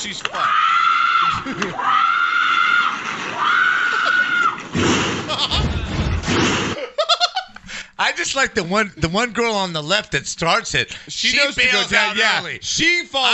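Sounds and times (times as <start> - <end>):
speech: 0.0 - 2.6, 8.0 - 13.3
woman screaming in long high-pitched wails: 0.4 - 4.6
laughter: 1.2 - 2.0, 3.6 - 4.5, 5.2 - 7.6.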